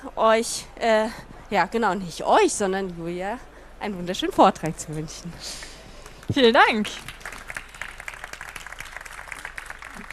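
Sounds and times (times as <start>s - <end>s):
speech: 0.2s - 5.7s, 6.3s - 7.2s
audience applause: 6.8s - 10.1s.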